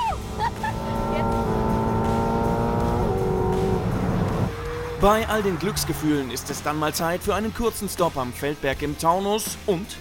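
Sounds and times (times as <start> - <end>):
laughter: 0.0 - 1.1
eight-cylinder sports car driving on a public road: 0.0 - 8.8
speech: 5.0 - 9.9.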